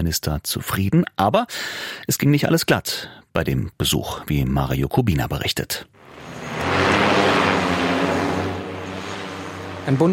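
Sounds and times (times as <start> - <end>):
speech: 0.0 - 6.0, 9.8 - 10.1
interceptor drone taking off with motor whine at disused Berlin-Tegel airport: 6.0 - 10.1.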